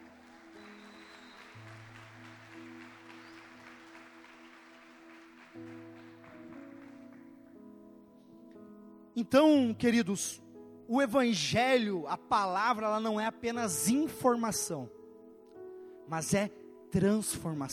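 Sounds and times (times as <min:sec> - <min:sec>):
congregation clapping: 0:00.0 - 0:07.6
speech: 0:09.2 - 0:15.0, 0:16.1 - 0:17.7.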